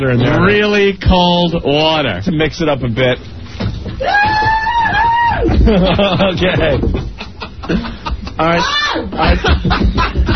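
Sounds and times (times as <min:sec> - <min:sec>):
speech: 0:00.0 - 0:04.5, 0:05.3 - 0:06.9, 0:07.7 - 0:10.1
noisy background: 0:00.0 - 0:10.3
loud high-pitched scream: 0:04.0 - 0:05.5, 0:08.6 - 0:09.2
people screaming and squealing: 0:04.0 - 0:05.9, 0:08.4 - 0:09.3
laughter: 0:05.5 - 0:10.3.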